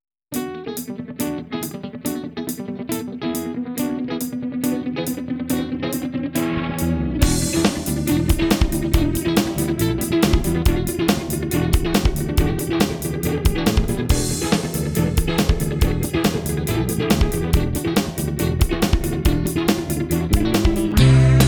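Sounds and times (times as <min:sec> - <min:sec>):
Maxon VJR9 pedal bonus effect: 0:00.3 - 0:21.4.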